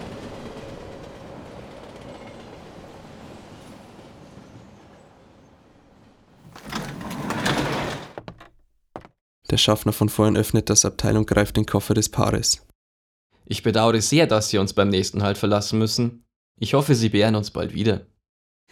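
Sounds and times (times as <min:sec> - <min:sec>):
hissing and clattering: 0:06.4 - 0:08.5
train rumble: 0:06.5 - 0:08.2
speech: 0:09.5 - 0:12.7, 0:13.5 - 0:18.1.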